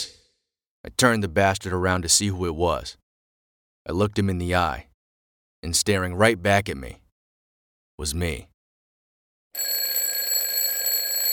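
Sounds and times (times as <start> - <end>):
speech: 0.8 - 3.0, 3.9 - 4.9, 5.6 - 7.0, 8.0 - 8.5
electronic alarm clock ringing: 9.6 - 11.3.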